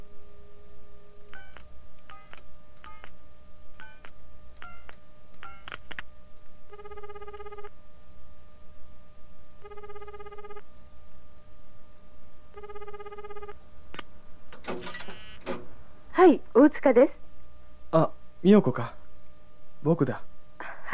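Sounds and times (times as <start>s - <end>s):
telephone ringing in trilling bursts: 1.3s - 3.1s, 6.7s - 7.7s, 9.6s - 10.6s, 12.5s - 13.6s, 14.6s - 15.6s
clicks and clatter: 14.5s - 15.7s
speech: 16.2s - 17.2s, 17.9s - 19.0s, 19.8s - 20.3s.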